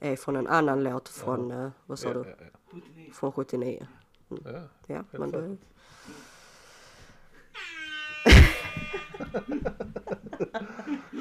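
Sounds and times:
speech: 0.0 - 6.3, 8.2 - 11.1
quick honks: 7.5 - 9.7
horn tooting: 7.5 - 9.8
laughter-like chattering: 8.3 - 11.1.

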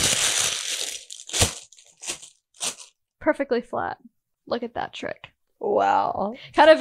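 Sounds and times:
baking parchment paper crumpling: 0.0 - 2.9
speech: 3.2 - 6.7.

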